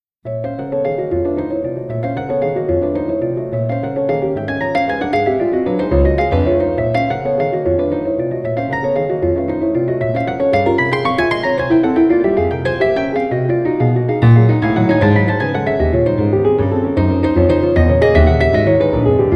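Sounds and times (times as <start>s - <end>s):
Swiss grand piano from 1860: 0.2s - 19.3s.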